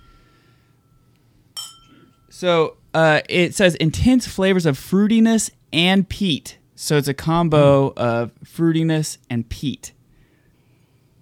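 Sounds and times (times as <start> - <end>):
low hum: 0.0 - 11.1
glasses of whisky clinking in a toast: 0.9 - 2.4
speech: 2.3 - 10.0.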